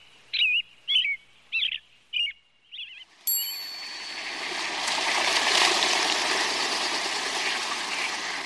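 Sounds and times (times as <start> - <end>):
European robin singing: 0.0 - 4.7
steady broadband rushing noise: 3.6 - 8.4.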